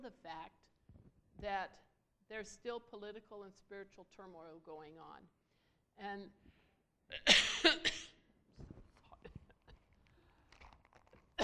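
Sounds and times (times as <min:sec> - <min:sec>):
speech: 0:00.0 - 0:00.7, 0:01.4 - 0:05.4, 0:06.0 - 0:06.5, 0:07.1 - 0:08.1
harsh coughs: 0:07.1 - 0:08.2.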